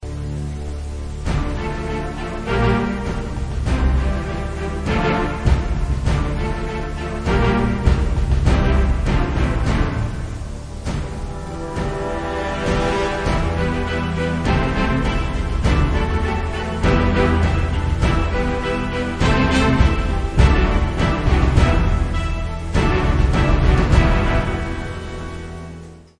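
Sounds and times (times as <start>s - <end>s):
background music for a card selection screen: 0.0s - 26.1s.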